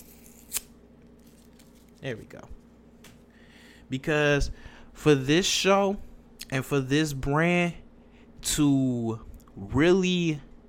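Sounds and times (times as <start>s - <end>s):
paper tearing: 0.0s - 2.0s
quiet hum: 0.0s - 10.6s
speech: 2.0s - 2.6s, 3.9s - 7.8s, 8.4s - 10.5s.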